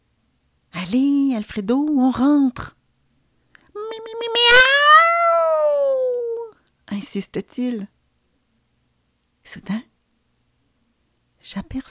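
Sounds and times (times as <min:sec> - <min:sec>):
speech: 0:00.9 - 0:02.8, 0:07.0 - 0:08.0, 0:09.5 - 0:09.9, 0:11.4 - 0:11.8
cat meowing: 0:03.8 - 0:06.5.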